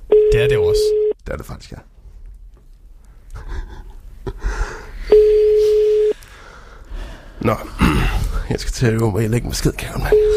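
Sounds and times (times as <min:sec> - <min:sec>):
speech: 0:00.4 - 0:01.9, 0:07.4 - 0:10.3
telephone ringback tone heard down the line: 0:05.1 - 0:06.2.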